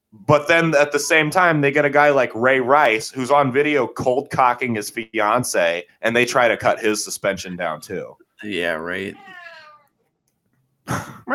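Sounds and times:
speech: 0.2 - 9.4
cat meowing in a room with the door shut: 9.0 - 10.0.

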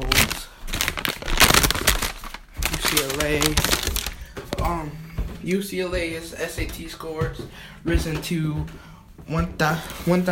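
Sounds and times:
paper sheet rustling as it's handled: 0.0 - 4.3
speech: 2.9 - 3.8, 4.8 - 10.3.

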